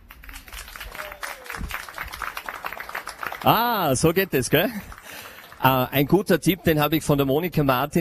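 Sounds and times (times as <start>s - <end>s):
audience applauding a very young musician at a live broadcast event: 0.0s - 6.2s
speech: 3.4s - 4.9s, 5.6s - 8.0s.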